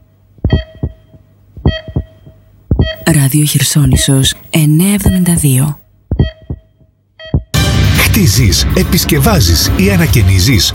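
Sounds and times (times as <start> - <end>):
faint steady hum: 0.0 - 7.6
deep thumping heartbeat sound effect used as a radio time signal: 0.4 - 3.0, 3.8 - 4.2, 5.0 - 5.4, 6.1 - 7.6
speech: 3.1 - 5.8, 8.2 - 10.7.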